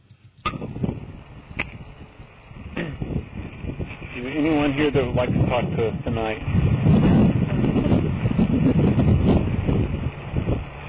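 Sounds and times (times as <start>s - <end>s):
strong wind buffeting the microphone outdoors: 0.0s - 10.8s
speech: 4.8s - 7.0s.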